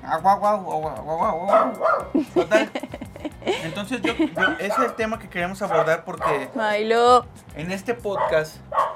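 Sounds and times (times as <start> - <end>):
speech: 0.0 - 8.9
dog barking and yelping: 1.4 - 2.2, 4.2 - 5.0, 5.7 - 6.6, 8.2 - 8.9
laughter: 2.1 - 5.0.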